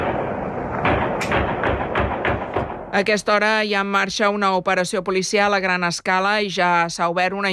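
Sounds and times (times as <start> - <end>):
gunshots: 0.0 - 3.0
ambient rumble: 0.0 - 3.6
speech: 3.0 - 7.5.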